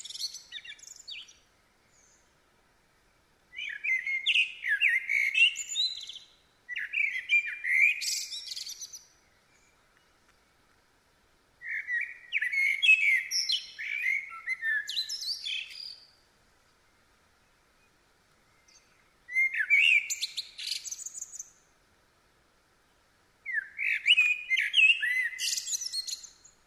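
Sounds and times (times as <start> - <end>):
common blackbird Turdus merula singing fluting whistles and scratchy twittering: 0.0 - 2.3, 3.5 - 10.1, 11.6 - 16.1, 18.5 - 21.6, 23.4 - 26.6.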